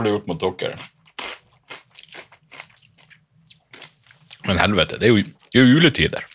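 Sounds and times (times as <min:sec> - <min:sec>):
speech: 0:00.0 - 0:01.0, 0:04.5 - 0:06.3
crunching nuts while eating: 0:00.8 - 0:04.4.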